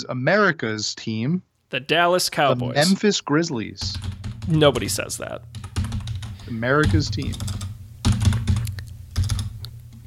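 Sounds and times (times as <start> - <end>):
speech: 0.0 - 5.7, 6.5 - 7.6
rapid typing on a computer keyboard: 5.5 - 9.6.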